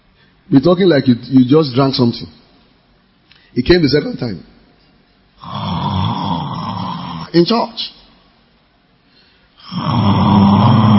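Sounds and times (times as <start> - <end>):
speech: 0.5 - 2.4, 3.6 - 4.6, 7.3 - 8.0, 9.7 - 10.2
person imitating loud rasping snores: 5.4 - 7.4, 9.6 - 10.9.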